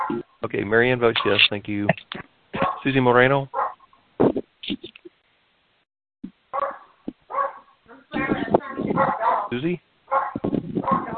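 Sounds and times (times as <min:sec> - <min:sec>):
speech: 0:00.0 - 0:02.2, 0:02.8 - 0:03.6, 0:09.5 - 0:09.9
dog barking in the background of a conference call: 0:02.6 - 0:02.8, 0:03.5 - 0:03.8, 0:06.5 - 0:08.1, 0:08.9 - 0:09.5, 0:10.1 - 0:11.1.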